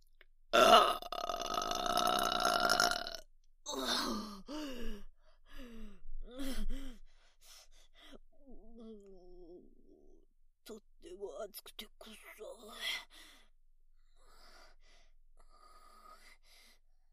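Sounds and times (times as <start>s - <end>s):
long loud rumbling burp: 0.5s - 4.2s
short breathy sighs and gasps: 3.7s - 10.2s, 14.1s - 16.8s.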